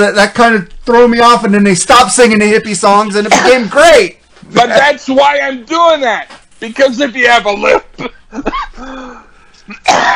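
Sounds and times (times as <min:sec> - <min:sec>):
speech: 0:00.0 - 0:08.6, 0:09.7 - 0:10.1
person clearing throat: 0:03.3 - 0:03.7, 0:09.7 - 0:10.1
person coughing: 0:03.3 - 0:03.7, 0:07.9 - 0:10.1.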